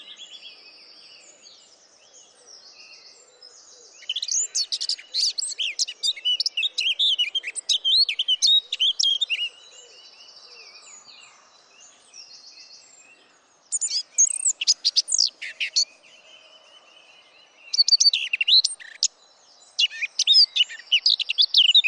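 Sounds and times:
Eurasian blackcap Sylvia atricapilla singing a fast sweet warble: 0:04.0 - 0:09.6, 0:13.7 - 0:16.0, 0:17.6 - 0:21.8.

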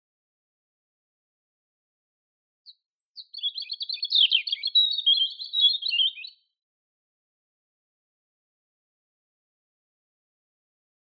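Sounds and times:
European robin Erithacus rubecula song: 0:02.7 - 0:06.5.

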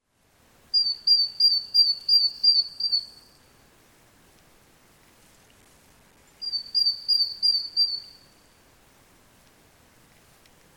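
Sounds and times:
faint background hiss: 0:00.0 - 0:10.7
great tit Parus major whistled notes: 0:00.8 - 0:03.4, 0:06.4 - 0:08.4.

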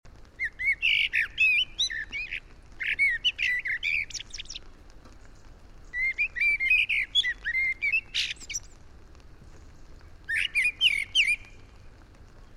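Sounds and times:
Eurasian blackbird Turdus merula singing: 0:00.4 - 0:04.7, 0:05.8 - 0:08.8, 0:09.8 - 0:11.7.

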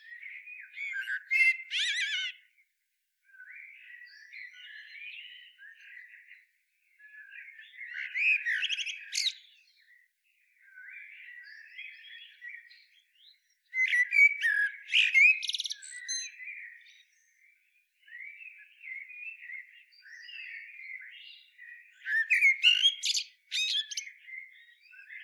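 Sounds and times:
common blackbird song, Turdus merula: 0:00.0 - 0:25.2.

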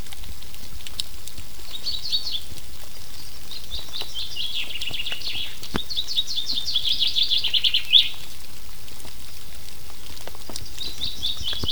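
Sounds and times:
steady pattering rain: 0:00.0 - 0:11.7
common chaffinch Fringilla coelebs song trill: 0:01.7 - 0:08.2, 0:10.5 - 0:11.7.

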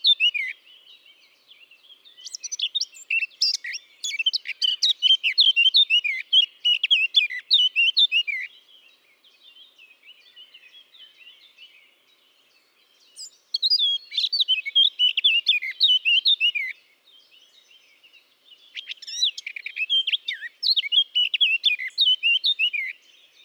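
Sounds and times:
Eurasian blackcap Sylvia atricapilla singing twittering and whistled notes: 0:00.0 - 0:23.4.

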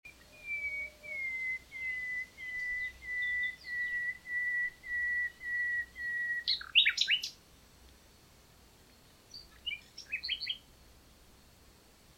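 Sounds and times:
common nightingale Luscinia megarhynchos pure falling whistles: 0:00.1 - 0:07.3, 0:09.4 - 0:10.6.

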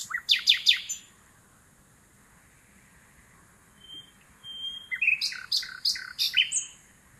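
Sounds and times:
common nightingale Luscinia megarhynchos singing: 0:00.0 - 0:01.1, 0:03.7 - 0:06.9.

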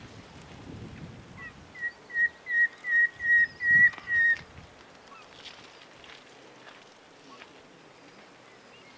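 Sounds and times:
Common nightingale Luscinia megarhynchos singing whistled notes: 0:01.4 - 0:04.4.

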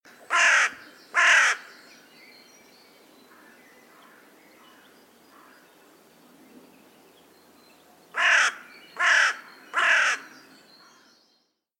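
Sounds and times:
carrion crow giving harsh hoarse caws: 0:00.3 - 0:01.7, 0:08.2 - 0:10.3.

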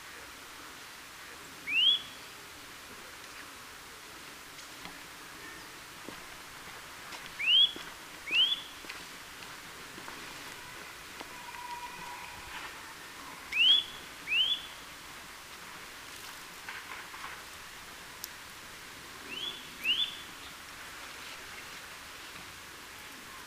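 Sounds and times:
faint background noise: 0:00.0 - 0:23.4
Eurasian nuthatch Sitta europaea calls: 0:07.4 - 0:08.8, 0:13.5 - 0:14.8, 0:19.3 - 0:20.5.

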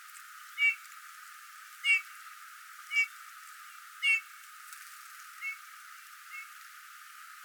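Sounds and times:
Eurasian bullfinch Pyrrhula pyrrhula giving soft piping calls: 0:00.6 - 0:00.8, 0:01.8 - 0:02.0, 0:02.9 - 0:03.1, 0:04.0 - 0:04.2.

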